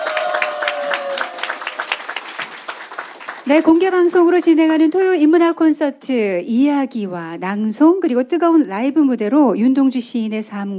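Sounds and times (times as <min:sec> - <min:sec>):
audience applauding after a live song: 0:00.0 - 0:04.4
speech: 0:03.5 - 0:10.7.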